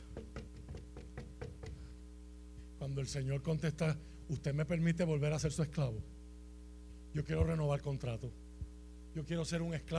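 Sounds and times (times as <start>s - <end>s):
knocking on a door: 0.0s - 1.8s
faint low hum: 0.0s - 9.9s
speech: 2.8s - 6.2s, 7.1s - 8.4s, 9.2s - 9.9s.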